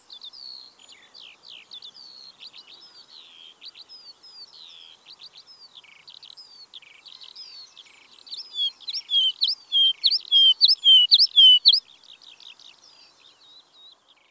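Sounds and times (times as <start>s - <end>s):
woodlark singing with twittering and thin whistles: 8.3s - 11.8s.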